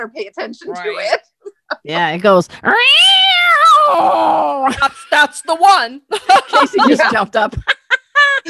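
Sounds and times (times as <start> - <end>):
speech: 0.0 - 3.1, 3.9 - 7.7
person imitating an angry cat yowl: 2.7 - 4.7
laughter: 6.1 - 8.4.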